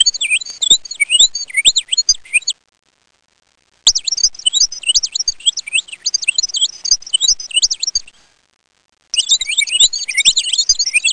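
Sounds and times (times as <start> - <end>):
bird twittering: 0.0 - 2.6, 3.9 - 8.1, 9.2 - 11.1.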